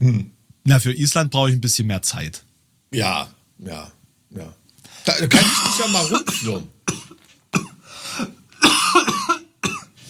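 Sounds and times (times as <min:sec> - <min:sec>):
speech: 0:00.0 - 0:06.8
harsh raspy coughing fit: 0:05.1 - 0:10.0.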